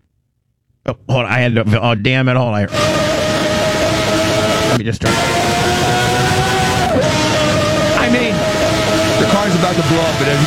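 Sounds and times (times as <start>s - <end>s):
speech: 0.9s - 3.1s, 4.7s - 5.5s, 9.2s - 10.4s
V12 race car engine screaming at high revs: 2.6s - 10.4s.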